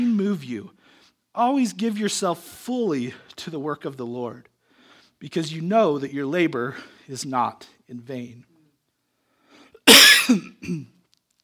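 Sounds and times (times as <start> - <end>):
speech: 0.4 - 4.5, 5.2 - 8.5, 9.9 - 11.0
person clearing throat while taking a cough drop: 9.9 - 11.0.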